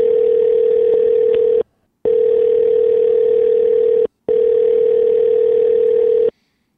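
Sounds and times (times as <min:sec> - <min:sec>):
steady electronic telephone ringback tone: 0:00.0 - 0:06.3.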